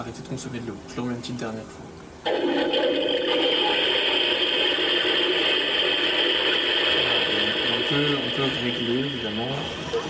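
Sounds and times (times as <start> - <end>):
speech: 0.0 - 3.5, 7.9 - 10.0
recorded toilet flush played to mask noises: 2.2 - 9.8.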